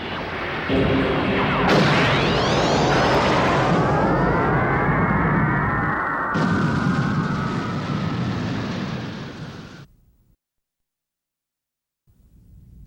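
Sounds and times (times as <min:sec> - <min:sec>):
sci-fi space fortress main cannon firing: 0:00.0 - 0:04.8, 0:06.3 - 0:09.8
layered sweeping tones falling in pitch: 0:00.0 - 0:09.8
deep rumble: 0:00.1 - 0:09.4.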